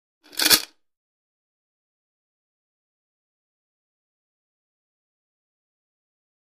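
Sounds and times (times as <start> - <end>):
metallic chain rattle: 0.3 - 0.7.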